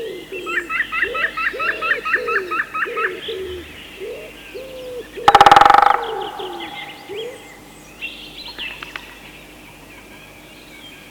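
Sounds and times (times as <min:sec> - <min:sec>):
common wood pigeon giving low mellow coos: 0:00.0 - 0:07.5
small birds singing in the background: 0:00.0 - 0:11.0
woodpecker drum roll: 0:05.3 - 0:07.6.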